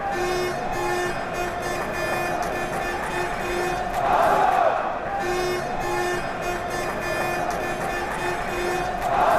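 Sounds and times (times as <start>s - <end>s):
horn: 0.0s - 4.1s, 5.1s - 9.2s.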